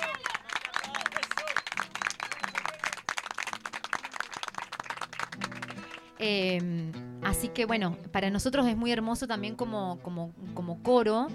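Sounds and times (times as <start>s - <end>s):
audience applause for a choir's guitarist: 0.0s - 6.8s
speech: 6.2s - 11.3s.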